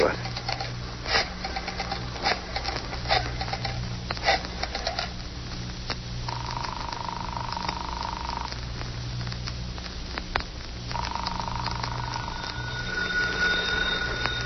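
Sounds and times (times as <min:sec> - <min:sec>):
low hum: 0:00.0 - 0:14.4
phone in a hideout being dialed: 0:06.3 - 0:08.5, 0:11.0 - 0:12.3
phone ringing tones heard through an earpiece: 0:06.3 - 0:08.6, 0:10.9 - 0:14.4.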